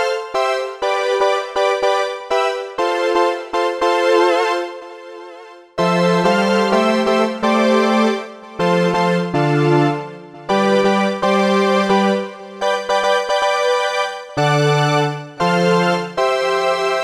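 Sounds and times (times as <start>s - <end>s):
Roland Juno synthesizer strings: 0.1s - 16.9s.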